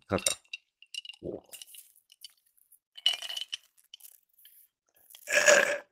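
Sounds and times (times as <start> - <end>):
ice rattling and clinking in a cup: 1.0 - 5.8
slurping iced coffee through a straw: 5.0 - 5.9.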